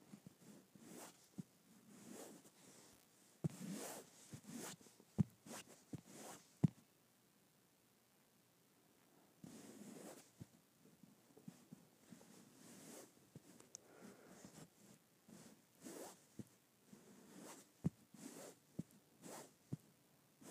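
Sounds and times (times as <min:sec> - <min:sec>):
sharp zip-like scratches: 0:00.4 - 0:06.5, 0:09.4 - 0:10.4, 0:12.2 - 0:13.2, 0:15.3 - 0:19.6
fabric stroking with soft brushing swishes: 0:00.4 - 0:06.6, 0:09.4 - 0:10.4, 0:11.5 - 0:13.5, 0:15.3 - 0:19.8.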